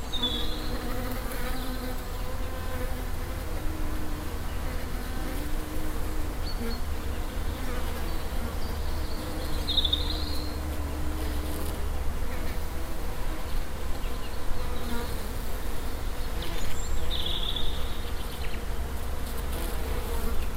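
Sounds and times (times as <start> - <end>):
bees humming in a dense low drone: 0.0 - 20.5.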